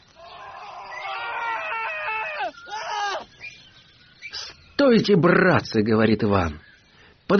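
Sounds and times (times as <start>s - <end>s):
shrill scream from a forest: 0.2s - 3.3s
speech: 4.8s - 6.7s.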